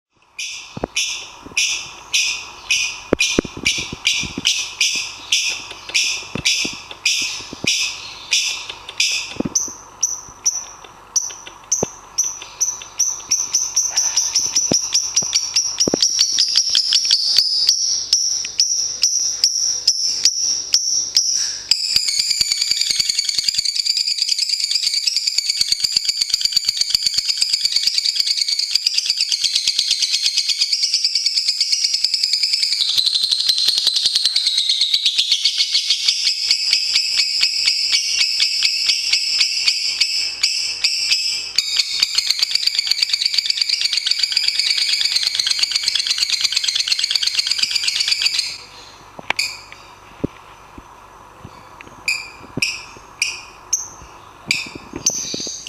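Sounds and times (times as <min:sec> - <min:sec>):
lovebird calling: 0:00.4 - 0:50.0, 0:52.0 - 0:55.6.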